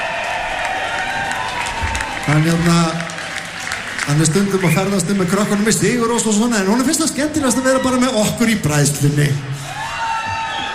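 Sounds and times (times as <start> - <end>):
audience applause at a concert: 0.0 - 7.0
crowd cheering: 0.0 - 8.6, 9.6 - 10.7
speech: 2.3 - 3.0, 4.1 - 9.6.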